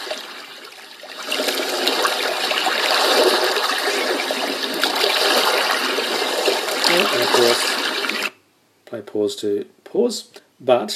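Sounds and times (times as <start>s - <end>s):
gently lapping and trickling lake water in the evening played back on a device: 0.0s - 8.4s
speech: 9.2s - 10.9s.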